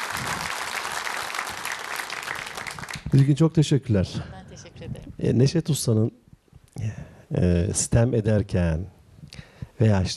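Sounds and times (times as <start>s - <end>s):
audience applause: 0.0s - 3.1s
speech: 3.1s - 6.2s, 6.8s - 9.0s, 9.8s - 10.1s.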